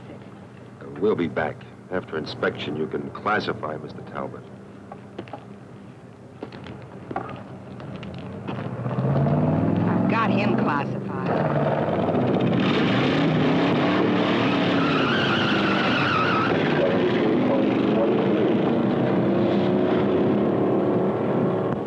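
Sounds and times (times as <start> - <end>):
speech: 0.9 - 4.6
car tire noise: 6.4 - 21.8
car engine roaring at speed: 6.6 - 21.8.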